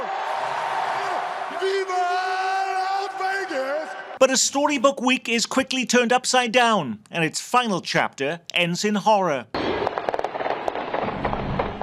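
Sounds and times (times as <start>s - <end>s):
crowd screaming at a celebration parade: 0.0s - 4.2s
speech: 4.2s - 9.6s
gunfire: 9.6s - 11.8s.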